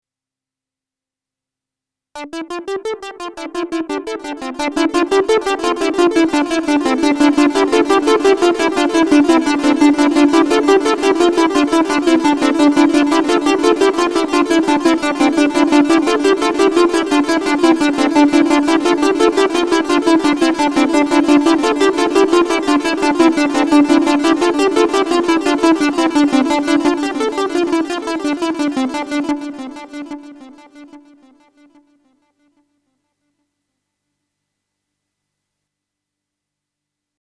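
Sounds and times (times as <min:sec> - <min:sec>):
synthesizer with delay effect: 0:02.2 - 0:31.8.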